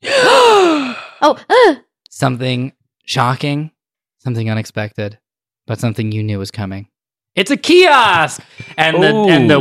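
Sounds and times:
people gasping in surprise: 0.0s - 1.2s
speech: 1.2s - 9.5s.

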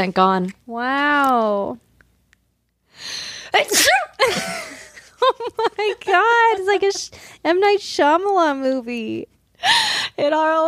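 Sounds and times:
speech: 0.0s - 1.9s, 3.0s - 4.7s, 5.3s - 10.6s
person sneezing: 3.6s - 4.2s.

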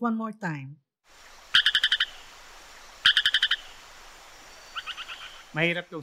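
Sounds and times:
striped stream frog clicking call: 1.5s - 3.9s, 4.7s - 5.9s.

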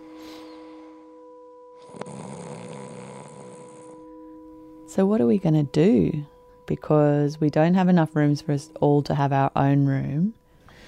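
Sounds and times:
low steady hum: 0.0s - 10.8s
loud rasping snore: 1.8s - 4.0s
speech: 4.9s - 10.4s.

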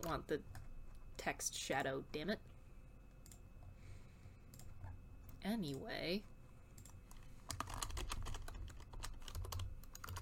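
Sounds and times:
speech: 0.0s - 0.6s, 1.2s - 2.5s, 5.4s - 6.3s
low hum: 0.0s - 10.1s
rapid typing on a computer keyboard: 6.8s - 10.1s.

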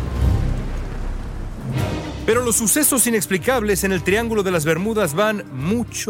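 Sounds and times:
heavy rain in a thunderstorm: 0.0s - 4.3s
deep thunder rumbling: 0.0s - 4.7s
speech: 2.3s - 6.0s.

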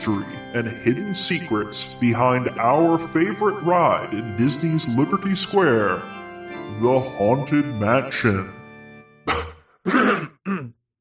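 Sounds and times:
speech: 0.0s - 8.6s, 9.3s - 9.5s
loud gravelly throat clearing: 9.3s - 10.8s.

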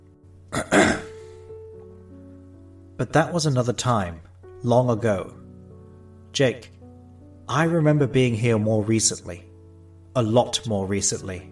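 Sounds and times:
person clearing throat: 0.5s - 1.3s
speech: 3.0s - 5.4s, 6.3s - 6.8s, 7.5s - 9.5s, 10.2s - 11.5s.

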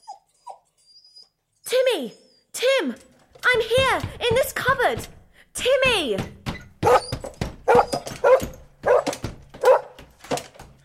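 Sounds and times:
speech: 2.0s - 2.2s, 2.8s - 6.4s
dog barking with a whiny edge: 6.8s - 7.1s, 7.7s - 10.0s.

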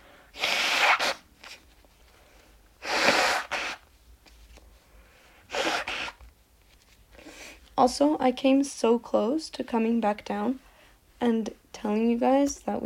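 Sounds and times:
person blowing nose: 0.0s - 1.6s, 2.8s - 3.9s, 5.4s - 6.2s
speech: 7.8s - 10.6s, 11.2s - 12.8s.

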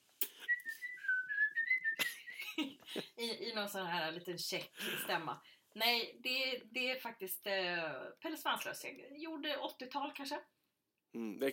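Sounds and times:
person whistling a sustained wavering tone: 0.2s - 2.5s
speech: 2.6s - 11.5s.

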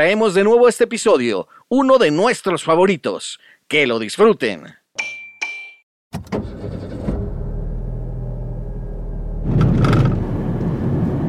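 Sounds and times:
speech: 0.0s - 5.1s
car suspension clunks and rattles: 6.2s - 7.7s, 9.4s - 10.4s
car rumbling along while driving: 6.4s - 11.2s.

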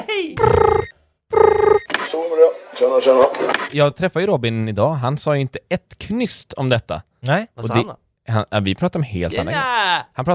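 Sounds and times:
telephone ringing: 0.4s - 2.2s
speech: 2.8s - 10.3s.

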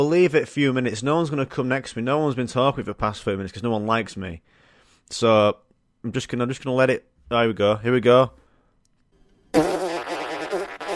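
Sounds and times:
speech: 0.0s - 8.4s
loud buzzy fart: 9.5s - 10.9s.

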